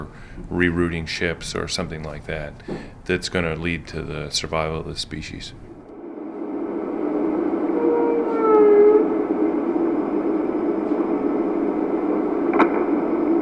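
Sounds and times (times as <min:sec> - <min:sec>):
speech: 0:00.0 - 0:05.7
steady underwater rumble: 0:00.0 - 0:13.4
whale call harmonic whistle-moan: 0:07.1 - 0:10.3
whale sharp pop: 0:12.5 - 0:13.0.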